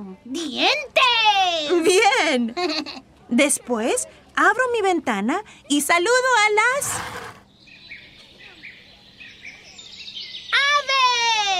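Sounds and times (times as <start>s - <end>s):
speech: 0.2s - 1.2s, 1.8s - 7.4s
laughter: 1.7s - 3.0s
birds chirping and twittering: 6.8s - 11.5s.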